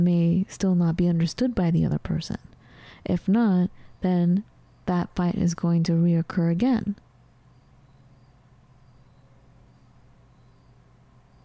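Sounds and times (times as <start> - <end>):
speech: 0.0 - 7.0
steady low hum: 0.0 - 11.4
crickets chirping: 3.6 - 5.9, 7.3 - 11.4.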